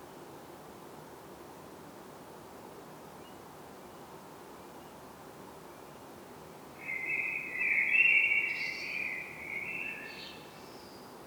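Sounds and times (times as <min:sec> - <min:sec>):
common blackbird Turdus merula singing: 0:06.8 - 0:11.1.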